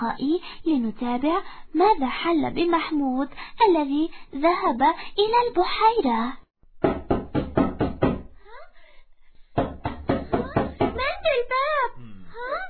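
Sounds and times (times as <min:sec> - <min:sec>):
speech: 0:00.0 - 0:07.0
loud knocks on a door: 0:06.8 - 0:08.3, 0:09.6 - 0:11.1.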